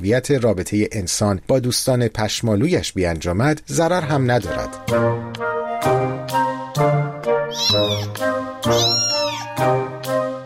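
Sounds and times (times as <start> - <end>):
speech: 0.0 - 9.8
cat meowing with drawn-out wavering cries: 7.5 - 9.6.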